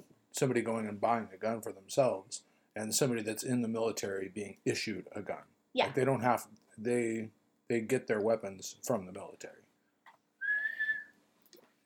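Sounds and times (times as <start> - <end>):
speech: 0.4 - 9.6
person whistling a single steady high tone: 10.4 - 11.2.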